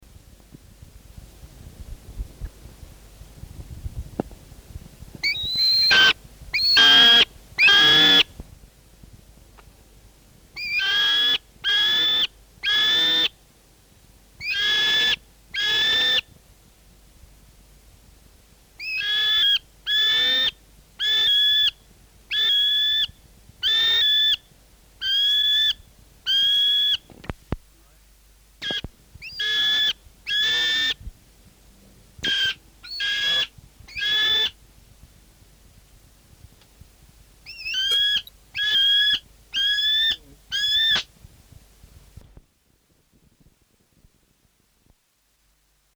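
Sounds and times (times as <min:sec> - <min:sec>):
New Zealand falcon calling: 0:05.2 - 0:08.3, 0:10.6 - 0:13.4, 0:14.4 - 0:16.3, 0:18.8 - 0:27.2, 0:28.6 - 0:31.1, 0:32.2 - 0:34.6, 0:37.4 - 0:41.1.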